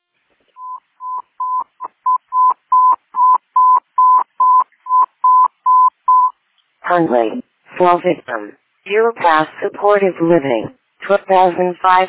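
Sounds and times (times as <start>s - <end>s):
dispatch tones paging out a station, short electronic beeps: 0.6s - 6.4s
speech: 6.9s - 12.0s.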